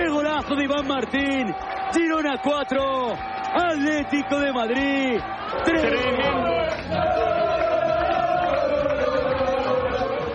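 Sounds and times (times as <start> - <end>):
football team chanting and shouting in dressing room: 0.0 - 10.3
speech: 0.5 - 7.6.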